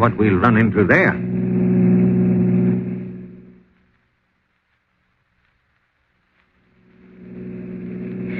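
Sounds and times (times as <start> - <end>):
speech: 0.0 - 1.3
loud motor vehicle engine roaring: 0.0 - 3.8, 6.8 - 8.3.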